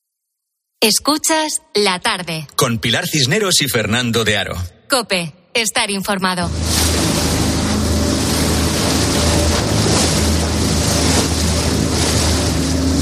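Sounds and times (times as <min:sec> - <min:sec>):
speech: 0:00.8 - 0:07.1
fishing boat engine droning at sea: 0:06.4 - 0:13.0
loud rush of wind and water at sea: 0:06.5 - 0:13.0.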